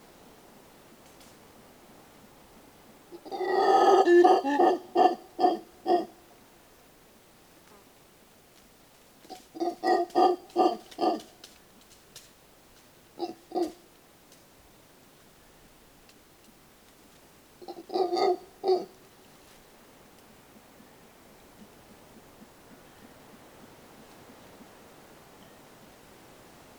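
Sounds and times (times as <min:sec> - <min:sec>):
Alouatta palliata mantled howler monkey grunting in Santa Rosa National Park, Costa Rica: 0:03.1 - 0:06.2, 0:09.3 - 0:11.3, 0:13.2 - 0:13.8, 0:17.6 - 0:19.0.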